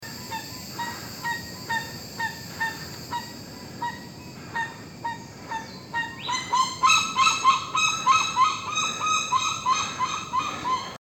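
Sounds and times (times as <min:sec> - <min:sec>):
Pava Crestada calling: 0:00.0 - 0:10.9.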